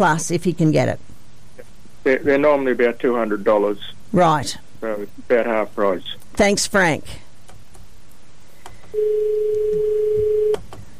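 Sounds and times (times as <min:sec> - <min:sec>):
speech: 0:00.0 - 0:01.1, 0:02.0 - 0:07.2, 0:08.9 - 0:10.7
faint hiss on a phone line: 0:00.0 - 0:10.9
telephone ring tone over a phone line: 0:09.0 - 0:10.6.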